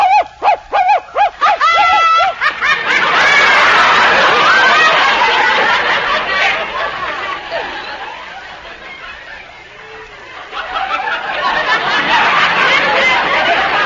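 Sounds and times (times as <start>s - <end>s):
human voice imitating a dog with high yelps: 0.0s - 2.3s
laughter: 0.8s - 13.8s.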